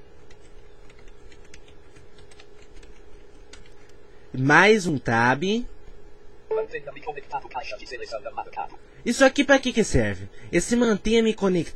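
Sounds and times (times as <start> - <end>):
steady low hum: 0.0 - 11.7
typing a password on computer keyboard: 0.3 - 3.8
speech: 4.3 - 5.7, 6.7 - 11.7.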